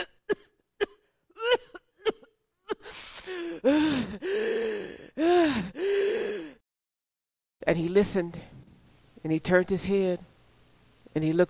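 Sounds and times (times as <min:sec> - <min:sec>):
voice imitating a sick man's coughing fit: 0:00.0 - 0:03.3
voice imitating long strained wheezing gasps for breath: 0:02.7 - 0:06.6
speech: 0:03.6 - 0:04.5, 0:07.7 - 0:08.5, 0:09.2 - 0:10.3, 0:11.1 - 0:11.4.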